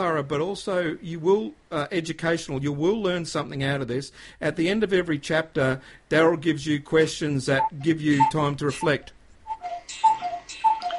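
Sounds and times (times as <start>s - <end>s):
speech: 0.0s - 9.2s, 9.9s - 10.1s
cuckoo clock two-note descending cuckoo calling the hour: 7.6s - 10.9s.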